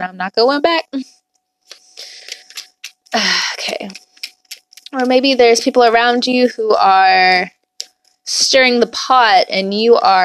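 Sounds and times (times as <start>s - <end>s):
speech: 0.0s - 1.2s, 3.1s - 4.0s, 4.9s - 7.6s, 8.3s - 10.2s
faint steady hum: 0.0s - 10.2s
deck of cards being shuffled: 1.7s - 5.7s.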